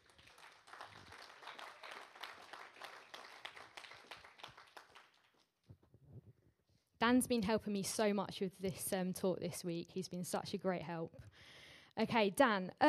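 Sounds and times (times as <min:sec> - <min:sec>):
audience applause: 0:00.0 - 0:05.4
speech: 0:07.0 - 0:11.3, 0:12.0 - 0:12.8.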